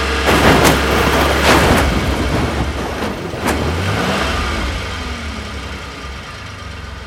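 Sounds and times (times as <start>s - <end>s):
car flipping over: 0.2s - 5.3s.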